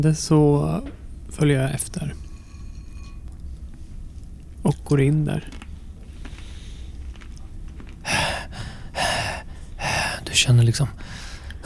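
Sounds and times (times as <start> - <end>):
speech: 0.0 - 2.2, 4.9 - 5.6, 10.4 - 11.0
heavy rasping breaths: 8.0 - 11.6.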